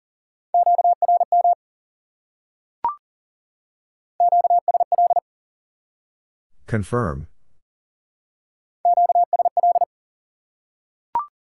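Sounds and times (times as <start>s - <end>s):
Morse code beeps in a steady mid-pitched tone: 0.6s - 1.6s, 4.2s - 5.2s, 8.9s - 9.9s
speech: 6.7s - 7.3s.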